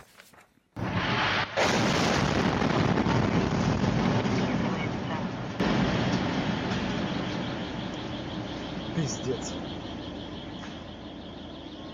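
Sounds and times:
bomb explosion recorded by car dashcam: 0:00.8 - 0:08.8
roaring rumble of debris and blast noise: 0:00.8 - 0:11.2
speech: 0:09.3 - 0:09.8.

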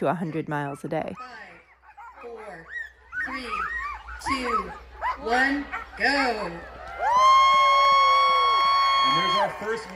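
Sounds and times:
speech: 0:00.0 - 0:01.5, 0:02.6 - 0:06.7, 0:09.0 - 0:09.9
loud high-pitched whoop at a dog sled race start: 0:06.9 - 0:09.6.

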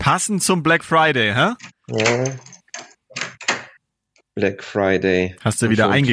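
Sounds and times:
speech: 0:00.0 - 0:02.5, 0:04.4 - 0:06.1
door opening as a delivery arrives: 0:01.6 - 0:03.8.

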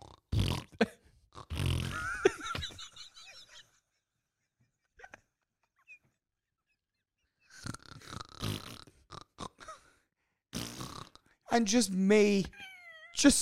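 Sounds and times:
person imitating snoring of an airplane passenger: 0:00.0 - 0:02.2, 0:07.5 - 0:09.8, 0:10.6 - 0:11.3
laughter: 0:01.9 - 0:06.2
speech: 0:11.6 - 0:12.6, 0:13.2 - 0:13.4.

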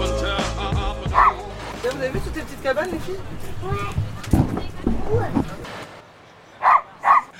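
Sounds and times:
outdoor noise on a beach: 0:00.2 - 0:07.3
dog barking on a beach: 0:01.1 - 0:01.4, 0:06.6 - 0:07.3.

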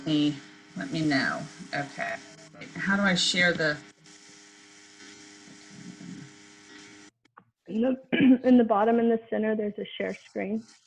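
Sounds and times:
speech: 0:00.0 - 0:03.9, 0:07.7 - 0:10.8
electric fan whirring: 0:00.0 - 0:07.1.

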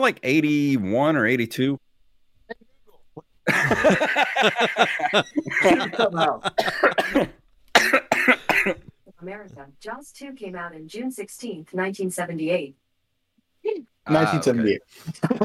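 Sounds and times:
speech: 0:00.0 - 0:01.8, 0:03.2 - 0:08.0, 0:08.6 - 0:12.8, 0:13.6 - 0:15.4
person laughing: 0:03.5 - 0:07.1, 0:15.1 - 0:15.4
loud coughing fit: 0:05.5 - 0:08.9.

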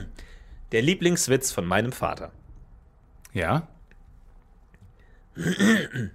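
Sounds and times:
speech: 0:00.0 - 0:02.4, 0:03.3 - 0:03.7, 0:05.4 - 0:06.1
throat clearing: 0:05.4 - 0:06.1.

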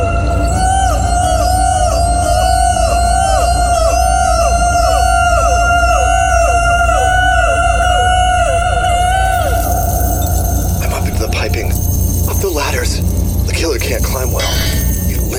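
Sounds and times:
chorus of high-pitched screams by many voices: 0:00.0 - 0:15.2.

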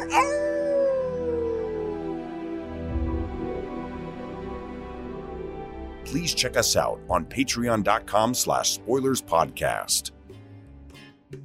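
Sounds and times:
single wolf howling: 0:00.0 - 0:02.8
speech: 0:06.1 - 0:10.2.

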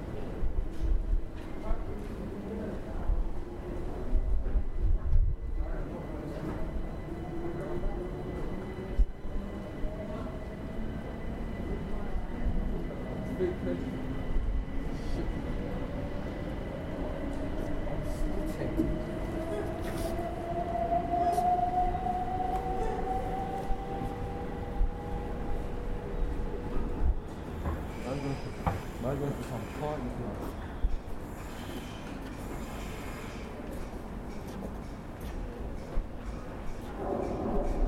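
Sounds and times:
train rumbling alongside a station platform: 0:00.2 - 0:37.8.

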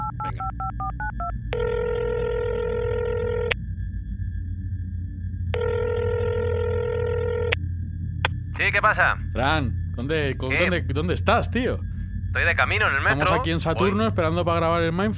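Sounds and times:
phone dialing tones: 0:00.0 - 0:03.6, 0:05.6 - 0:07.6
low hum: 0:00.0 - 0:15.1
speech: 0:08.8 - 0:15.1.

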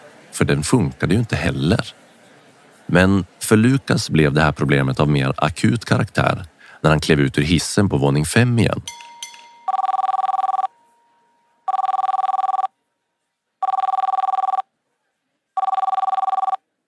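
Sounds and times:
speech: 0:00.4 - 0:02.1, 0:02.9 - 0:09.0
office telephone ringing: 0:09.5 - 0:12.7, 0:13.6 - 0:14.6, 0:15.6 - 0:16.6.

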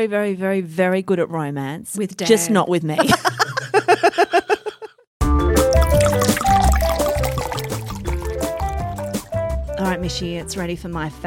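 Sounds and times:
speech: 0:00.0 - 0:04.4, 0:10.1 - 0:11.2
laughter: 0:03.0 - 0:05.0
upbeat music: 0:05.4 - 0:10.6
sparkling Moscato wine glugging out of a bottle into a glass: 0:05.7 - 0:09.3.

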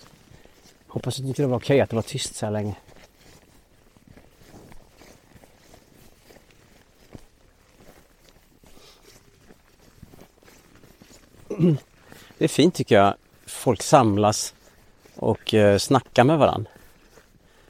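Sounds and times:
footsteps crunching through snow at a walking pace: 0:00.0 - 0:17.6
speech: 0:00.9 - 0:02.9, 0:11.6 - 0:14.6, 0:15.2 - 0:16.8.

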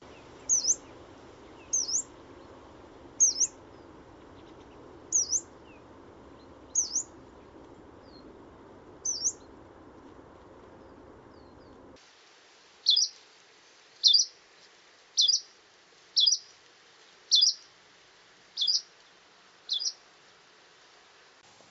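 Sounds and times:
yellow-browed warbler calls: 0:00.0 - 0:08.4, 0:09.0 - 0:09.6, 0:10.8 - 0:11.9, 0:12.8 - 0:13.2, 0:14.0 - 0:14.4, 0:15.2 - 0:15.5, 0:16.2 - 0:16.6, 0:17.3 - 0:17.7, 0:18.6 - 0:18.9, 0:19.7 - 0:20.0
soft hiss: 0:00.0 - 0:21.6.

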